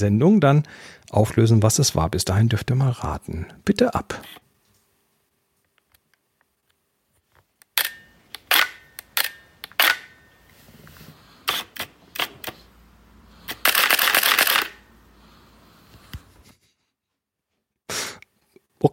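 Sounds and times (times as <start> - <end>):
speech: 0.0 - 4.4, 18.8 - 18.9
mechanical camera clicks including depth-of-field previews: 7.7 - 10.1, 13.5 - 14.8.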